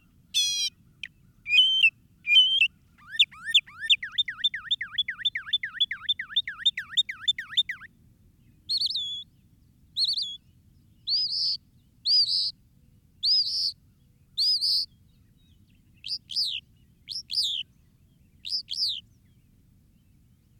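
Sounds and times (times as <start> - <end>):
Northern mockingbird singing: 0.4 - 7.9, 8.7 - 9.4, 10.0 - 10.4, 11.0 - 12.5, 13.2 - 13.8, 14.4 - 19.4.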